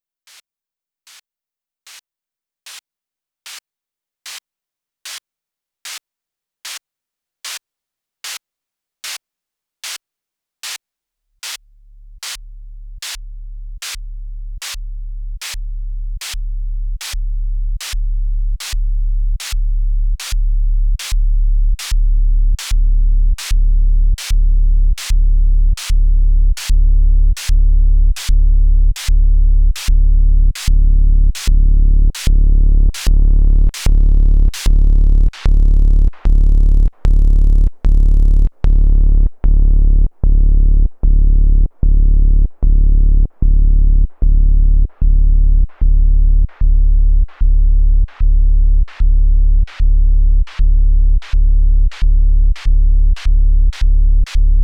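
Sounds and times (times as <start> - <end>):
Behringer System 100 simple gate rhythm: 12.0 - 54.6.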